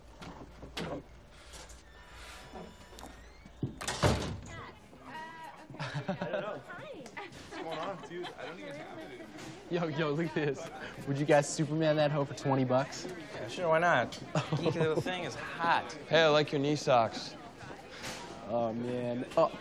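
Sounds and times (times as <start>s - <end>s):
speech: 0.9s - 1.2s, 7.9s - 17.4s, 18.5s - 19.5s
door shutting with a sharp thud: 2.0s - 4.6s
people chattering in a busy room: 4.4s - 19.5s
laughter: 5.7s - 9.6s, 14.2s - 15.4s.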